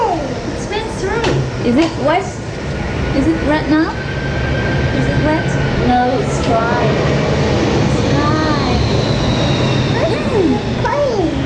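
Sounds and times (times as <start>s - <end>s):
airplane flying overhead: 0.0s - 11.4s
speech: 1.6s - 2.4s, 3.1s - 4.0s, 5.2s - 7.3s.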